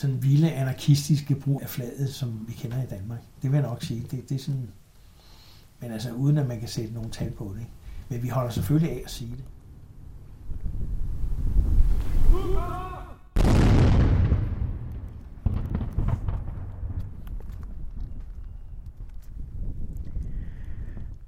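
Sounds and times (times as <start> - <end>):
speech: 0.0 - 4.8, 5.8 - 9.6
steady outdoor wind noise: 0.0 - 21.2
faint cries: 12.2 - 13.4
cannon salute fired with blank powder from a bastion battery: 13.4 - 17.2.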